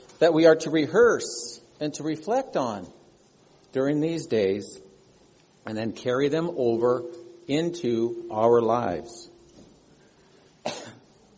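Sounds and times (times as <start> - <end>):
speech: 0.2 - 3.0, 3.7 - 4.8, 5.6 - 9.3
person with seasonal allergies coughing: 10.6 - 11.1.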